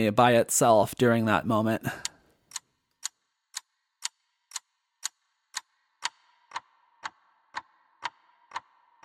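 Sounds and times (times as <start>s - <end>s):
speech: 0.0s - 2.1s
steady evenly spaced ticking with filter and reverb: 1.8s - 9.0s.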